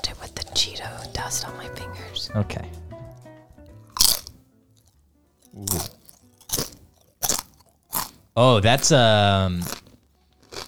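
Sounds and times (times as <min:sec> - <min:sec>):
speech: 0:00.8 - 0:02.8, 0:08.4 - 0:09.8
biting and chewing a crunchy kettle cooked potato chip: 0:04.0 - 0:10.6.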